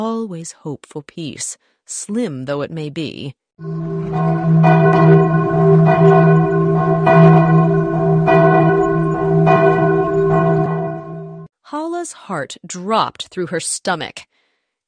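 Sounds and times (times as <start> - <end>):
speech: 0.0 - 7.8, 12.0 - 14.3
large alarm bells tolling from an outer wall: 3.6 - 11.5.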